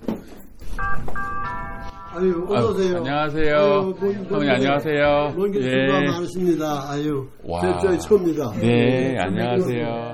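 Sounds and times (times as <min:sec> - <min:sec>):
two-note doorbell chime at a house in Duluth USA: 0:00.6 - 0:03.0
speech: 0:02.1 - 0:10.1.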